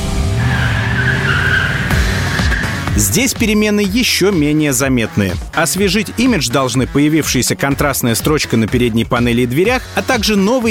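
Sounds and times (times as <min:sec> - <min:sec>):
car engine driving off on a test drive: 0:00.0 - 0:03.8
speech: 0:03.0 - 0:10.6.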